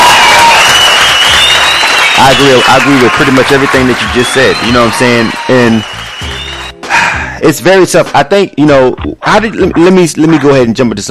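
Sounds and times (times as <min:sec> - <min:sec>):
crowd applause: 0:00.0 - 0:06.7
speech: 0:02.2 - 0:06.0, 0:07.4 - 0:11.1.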